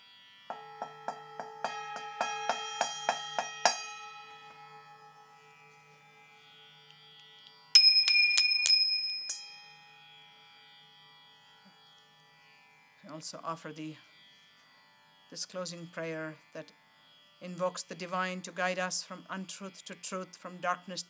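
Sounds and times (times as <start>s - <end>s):
small prayer bell rung rapidly: 0.5s - 5.2s, 7.8s - 9.9s
speech: 13.2s - 14.1s, 15.3s - 16.8s, 17.4s - 21.0s.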